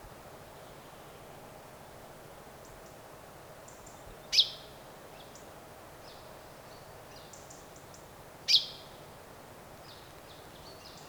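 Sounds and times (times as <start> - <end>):
low background hiss: 0.0 - 11.0
Common chaffinch Fringilla coelebs calls: 4.3 - 4.6, 8.5 - 8.8.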